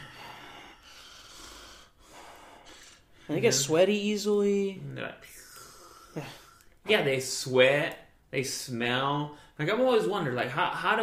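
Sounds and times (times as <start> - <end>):
person imitating a very overweight person's heavy wheezy breathing: 0.0 - 3.3, 5.3 - 6.8
speech: 3.3 - 5.4, 6.2 - 11.0.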